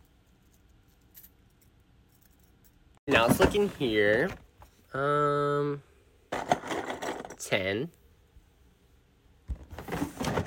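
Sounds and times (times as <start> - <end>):
speech: 3.1 - 5.9, 7.5 - 8.0
drawer sliding open with faint rattling: 9.6 - 10.4.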